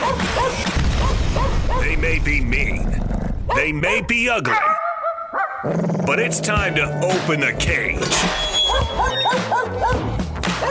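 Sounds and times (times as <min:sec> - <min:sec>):
dogs barking in short high yips: 0:00.0 - 0:01.8, 0:04.5 - 0:05.7, 0:08.4 - 0:10.7
speech: 0:02.1 - 0:04.8, 0:05.6 - 0:10.7.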